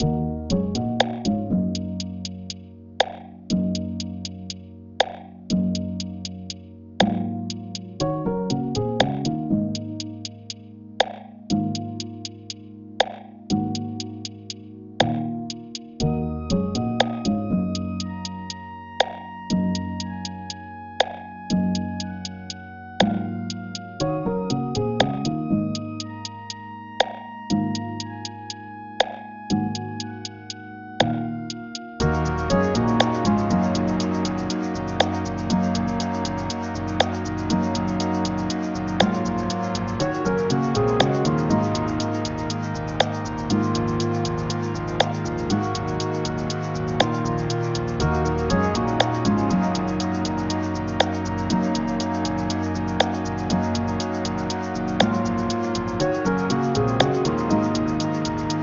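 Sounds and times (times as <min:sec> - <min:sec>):
lo-fi music: 0:00.0 - 0:58.6.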